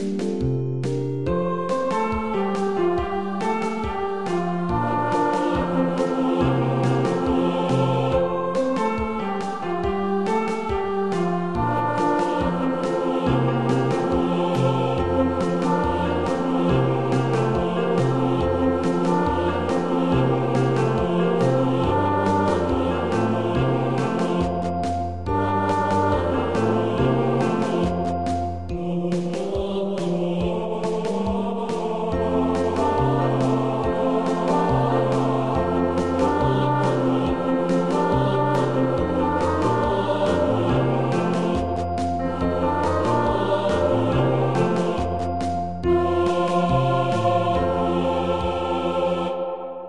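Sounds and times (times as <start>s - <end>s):
alto singing fast: 0.1s - 49.8s.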